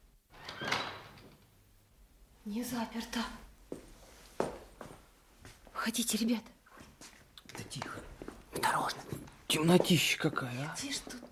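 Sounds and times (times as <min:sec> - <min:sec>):
door pushed open with a scraping creak: 0:00.3 - 0:01.5
speech: 0:02.5 - 0:03.4, 0:05.8 - 0:11.3.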